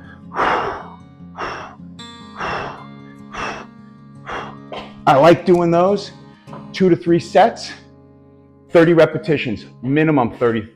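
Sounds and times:
forceful exhalations during crunch exercise: 0:00.0 - 0:01.8, 0:02.4 - 0:05.0
speech: 0:05.0 - 0:06.2, 0:06.8 - 0:07.8, 0:08.7 - 0:10.7.

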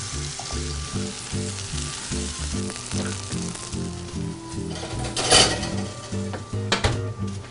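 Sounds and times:
tomatoes frying in olive oil: 0:00.0 - 0:07.3
rhythmic utensil scrapes: 0:04.4 - 0:06.3
pan clatter: 0:04.7 - 0:06.3.

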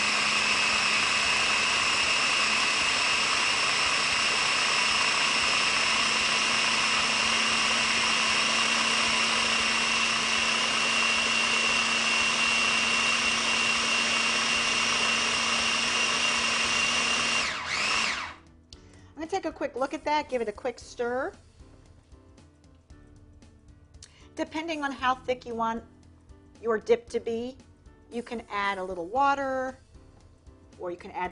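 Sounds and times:
blender whirring a red bell pepper dip with onion powder: 0:00.0 - 0:18.5
speech: 0:19.9 - 0:21.5, 0:24.4 - 0:25.9, 0:26.6 - 0:29.8, 0:30.8 - 0:31.2.

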